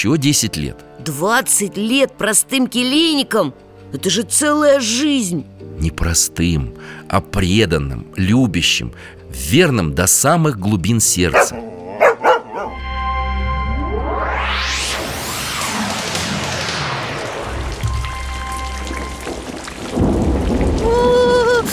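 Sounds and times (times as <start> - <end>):
speech: 0.0 - 12.0
deep low rumble beneath the storm: 12.7 - 21.7
fierce wind and rain storm on a dark evening: 14.0 - 21.7.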